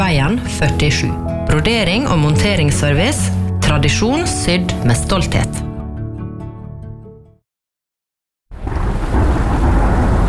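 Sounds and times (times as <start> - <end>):
speech: 0.1 - 5.7
deep rumbling thunder: 8.5 - 10.2
heavy rain: 8.6 - 10.2.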